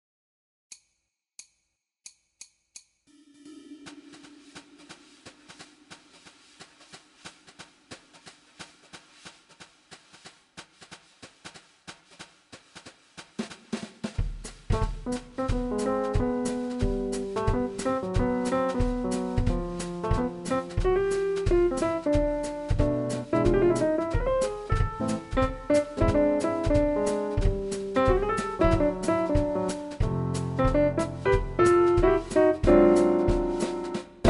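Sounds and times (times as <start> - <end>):
music without bass: 14.4 - 34.2.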